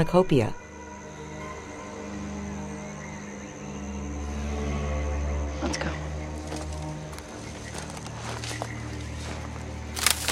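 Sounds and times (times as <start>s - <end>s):
speech: 0.0s - 0.6s
steady low droning background: 0.0s - 10.3s
slow careful footsteps on a dry forest floor: 6.2s - 10.3s.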